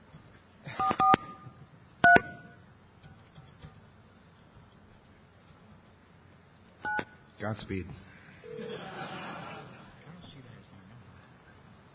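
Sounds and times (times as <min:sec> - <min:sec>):
electronic beeps of a phone keypad being dialed: 0:00.8 - 0:02.6, 0:06.8 - 0:07.2
speech: 0:07.4 - 0:08.1
laughter: 0:08.2 - 0:10.1.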